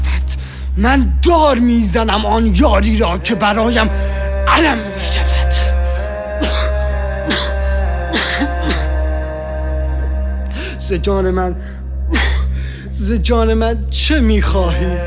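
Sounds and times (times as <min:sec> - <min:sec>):
strained vocal noises: 0:00.0 - 0:15.0
speech: 0:00.8 - 0:05.3, 0:10.9 - 0:11.7, 0:13.0 - 0:15.0
harsh coughs: 0:06.4 - 0:09.0.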